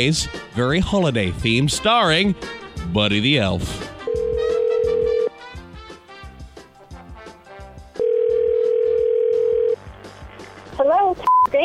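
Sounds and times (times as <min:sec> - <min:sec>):
speech: 0:00.0 - 0:03.9
bouncy rhythmic music: 0:00.0 - 0:11.6
loud steady telephone dial tone: 0:04.1 - 0:05.3, 0:08.0 - 0:09.8.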